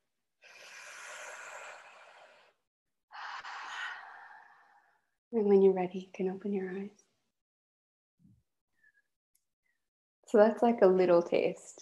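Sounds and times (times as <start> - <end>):
deep breaths: 0.4 - 5.1
speech: 5.3 - 7.0, 10.3 - 11.8.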